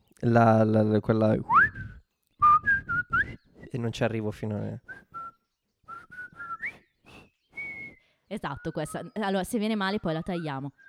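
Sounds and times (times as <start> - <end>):
speech: 0.2 - 1.6, 3.7 - 5.0, 8.3 - 10.8
person whistling a march tune: 1.5 - 3.5, 4.9 - 8.0.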